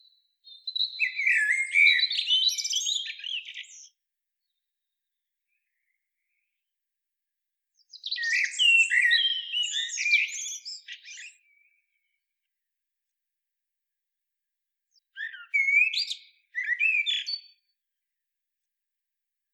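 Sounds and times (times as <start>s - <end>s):
Eurasian blackbird twittering and squeaking: 0.5s - 3.9s, 7.9s - 11.4s, 15.2s - 17.5s.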